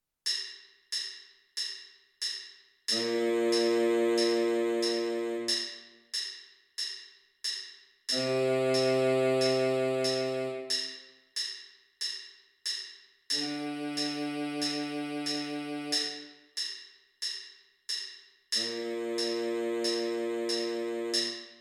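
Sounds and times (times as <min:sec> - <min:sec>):
baritone sax in a parade band: 0:02.9 - 0:05.7, 0:08.2 - 0:10.7, 0:13.4 - 0:16.2, 0:18.6 - 0:21.4.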